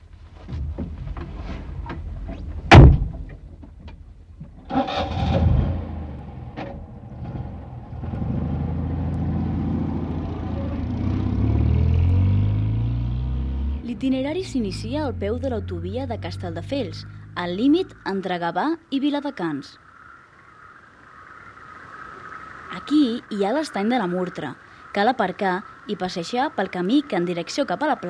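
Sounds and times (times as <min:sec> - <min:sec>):
car engine cranking, starting and rumbling: 0:00.0 - 0:18.2
car door slamming shut: 0:02.6 - 0:03.4
car pulling away: 0:04.6 - 0:18.0
speech: 0:14.0 - 0:19.8, 0:22.8 - 0:28.0.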